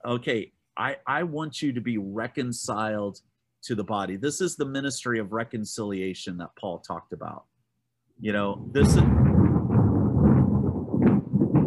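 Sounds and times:
speech: 0.0 - 7.5, 8.2 - 9.4
deep sustained rumble of thunder: 8.4 - 11.6.

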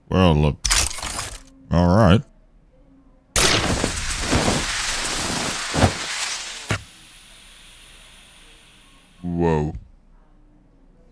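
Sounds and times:
speech: 0.2 - 0.7, 1.7 - 2.3
science-fiction gunfire blast: 3.4 - 8.9
sustained crackling noise: 3.4 - 9.2.

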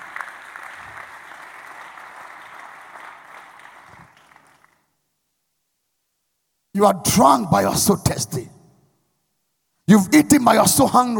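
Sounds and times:
audience clapping: 0.0 - 5.0
speech: 6.8 - 8.6, 9.9 - 11.1.

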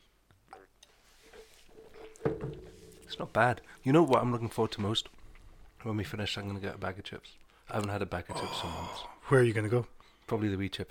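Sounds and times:
speech: 3.1 - 5.2, 5.8 - 10.9
brief louder gulp or click: 8.3 - 9.3
sipping ginger ale from a glass: 8.3 - 9.3.

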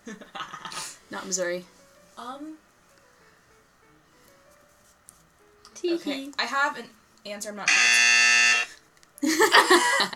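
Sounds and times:
speech: 0.1 - 0.3, 1.1 - 2.7, 5.8 - 8.2, 9.2 - 10.1
loud harsh game show buzzer from a buzzer app: 7.6 - 8.8
people bursting into laughter: 9.2 - 10.1.

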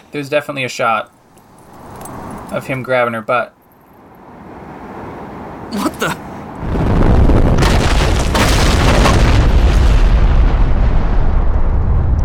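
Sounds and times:
speech: 0.1 - 1.2, 2.5 - 3.6, 5.7 - 6.3
giant stone boulder smashing through a platform in a video game: 6.6 - 12.1.

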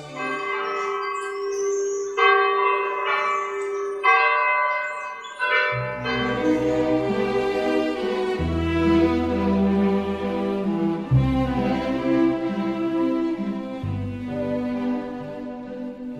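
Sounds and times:
deeper church bell ringing: 0.0 - 10.3
large cathedral church bells pealing: 0.0 - 16.1.

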